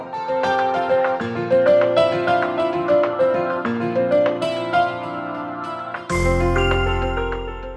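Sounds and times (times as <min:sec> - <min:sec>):
bright upbeat piano jingle: 0:00.0 - 0:07.7.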